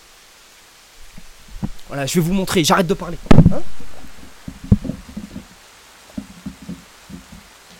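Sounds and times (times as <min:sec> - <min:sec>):
rain falling with a soft constant hiss: 0:00.0 - 0:07.7
speech: 0:01.9 - 0:03.8.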